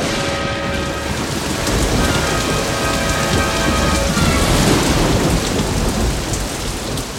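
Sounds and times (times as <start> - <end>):
low rumbling thunder: 0.0 - 7.1
steady heavy rain pouring down: 0.0 - 7.1.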